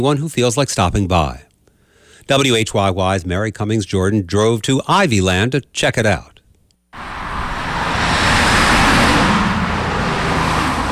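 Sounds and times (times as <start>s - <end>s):
speech: 0.0s - 1.5s, 2.3s - 7.1s
cars streaming past: 7.0s - 10.9s
continuous roar of rush-hour road traffic: 7.0s - 10.9s.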